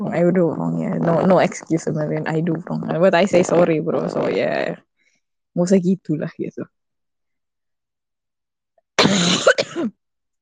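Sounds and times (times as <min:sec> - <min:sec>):
speech: 0:00.1 - 0:04.9, 0:05.6 - 0:06.8, 0:09.0 - 0:10.0
raspy cough with throat-clearing rasp: 0:09.0 - 0:10.0.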